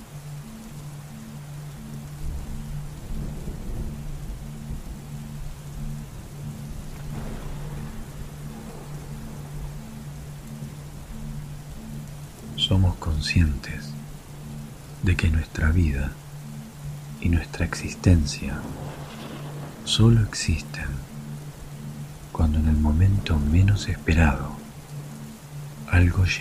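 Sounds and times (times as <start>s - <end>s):
steady dense summer thunderstorm rain hissing: 0.0s - 26.3s
deep summer thunderstorm thunder rumbling low and heavy: 2.2s - 11.7s, 17.2s - 24.4s
speech: 12.7s - 14.0s, 15.0s - 16.2s, 17.2s - 19.0s, 19.9s - 21.1s, 22.4s - 24.5s, 25.9s - 26.3s.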